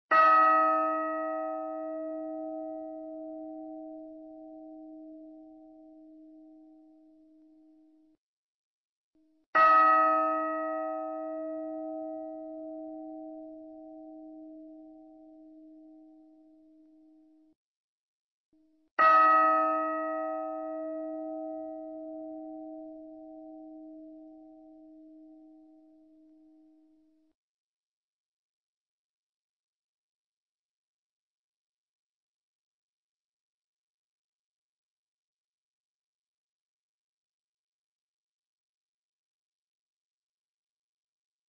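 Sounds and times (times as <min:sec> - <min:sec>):
bell: 0:00.1 - 0:08.2, 0:09.2 - 0:17.6, 0:18.6 - 0:27.4.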